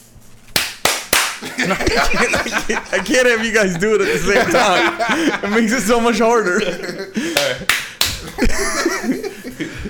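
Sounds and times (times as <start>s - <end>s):
hand claps to sync a video recording: 0.5s - 1.5s, 7.3s - 8.4s
laughter: 1.4s - 9.8s
speech: 1.6s - 9.8s.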